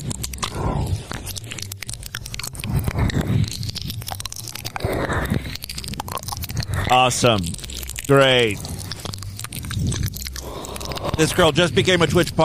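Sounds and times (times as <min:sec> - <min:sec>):
wet licking and mouth sounds from an ear-licking ASMR live stream: 0:00.0 - 0:12.4
speech: 0:06.9 - 0:08.7, 0:11.2 - 0:12.4.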